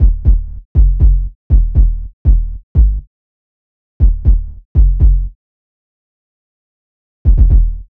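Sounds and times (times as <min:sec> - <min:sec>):
bass line: 0:00.0 - 0:03.1, 0:04.0 - 0:05.4, 0:07.3 - 0:07.9.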